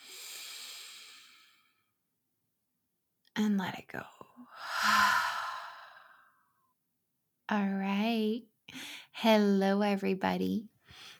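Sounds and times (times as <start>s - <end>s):
deep breath in and out: 0.0s - 2.0s, 4.4s - 6.5s
speech: 3.4s - 5.2s, 7.5s - 10.7s.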